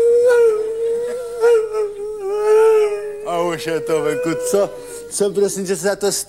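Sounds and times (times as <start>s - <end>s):
person imitating a dog howling: 0.0s - 5.5s
speech: 3.6s - 6.2s.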